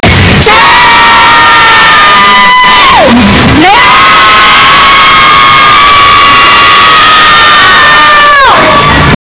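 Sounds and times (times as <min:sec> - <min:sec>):
boys and girls screaming at a concert: 0:00.4 - 0:08.8.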